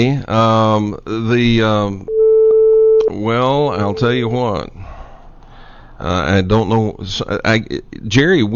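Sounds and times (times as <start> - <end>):
speech: 0.0 - 2.0, 3.1 - 4.7, 6.0 - 8.5
beeping on a phone line from an unexpected call-in: 2.1 - 4.2
steady mid-pitched electronic tone with short blip: 3.3 - 4.3.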